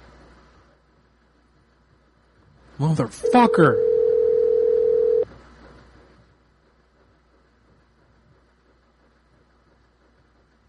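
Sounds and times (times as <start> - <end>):
quiet room hiss: 0.0 - 10.6
speech: 2.8 - 3.9
telephone electronic ring tone: 3.2 - 5.2.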